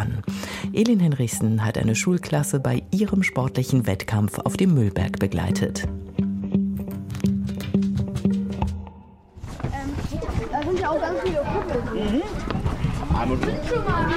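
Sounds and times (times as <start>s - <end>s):
speech: 0.7s - 6.0s, 13.2s - 14.1s
children stomping and running on the ground: 6.8s - 14.1s
crowd of young voices chattering and calling: 9.6s - 14.1s.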